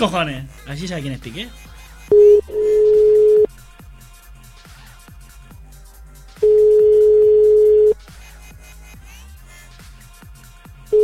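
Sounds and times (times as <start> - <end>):
speech: 0.0 - 2.3
telephone ringback tones of a call to a private home: 2.1 - 3.5, 6.4 - 8.0.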